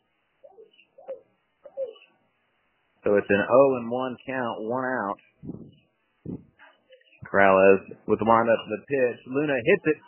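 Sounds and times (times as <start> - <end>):
bird cooing inside a baseball broadcast booth: 0.4 - 2.1
speech: 3.1 - 6.5, 7.3 - 10.0.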